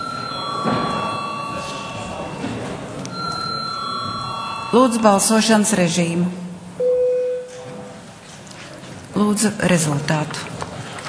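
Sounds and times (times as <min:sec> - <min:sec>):
bell ringing to call a vote in parliament: 0:00.0 - 0:06.4
murmur and shuffling in parliament: 0:00.0 - 0:06.8, 0:07.4 - 0:11.0
speech: 0:04.7 - 0:06.4, 0:09.2 - 0:10.6.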